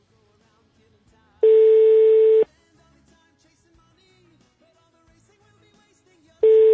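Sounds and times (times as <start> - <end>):
telephone line ringback tone on an unanswered call: 1.4 - 2.4, 6.4 - 6.7.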